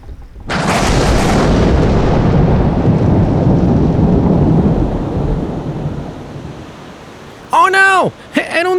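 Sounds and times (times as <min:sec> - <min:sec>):
thunder rumbling at sea: 0:00.0 - 0:07.5
thunder crack at sea: 0:00.4 - 0:06.8
heavy rain downpour at sea: 0:00.5 - 0:08.7.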